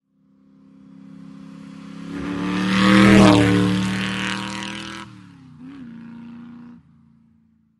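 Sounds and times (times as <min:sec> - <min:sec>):
motorcycle passing by: 0:00.2 - 0:07.6.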